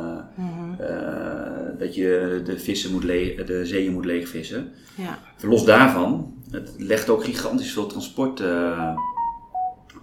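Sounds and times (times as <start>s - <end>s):
speech: 1.8s - 9.1s
mobile phone notification two-tone electronic beeps: 8.8s - 9.8s.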